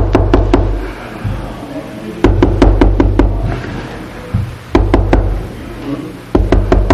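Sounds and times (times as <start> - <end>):
little children knocking on a locked bedroom door: 0.0 - 1.4, 2.2 - 3.5, 4.3 - 5.4, 6.3 - 6.9
low hum: 0.0 - 6.9.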